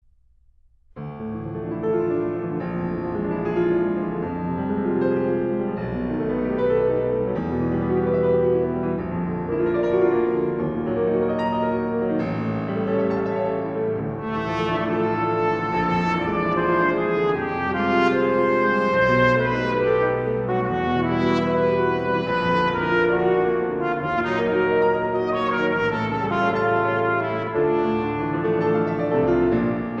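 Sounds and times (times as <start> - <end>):
piano: 0.0 - 29.9
trumpet: 14.1 - 29.9.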